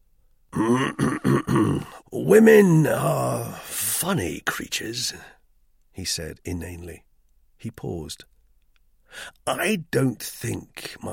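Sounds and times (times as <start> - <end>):
man clearing his throat: 0.6 - 2.0
speech: 2.3 - 3.3, 4.0 - 5.4, 6.0 - 8.3, 9.1 - 11.1.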